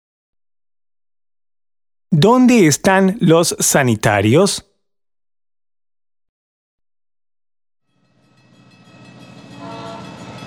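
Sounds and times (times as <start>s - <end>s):
speech: 2.1s - 4.7s
train rumbling: 8.6s - 10.4s
train horn blaring: 8.8s - 10.4s.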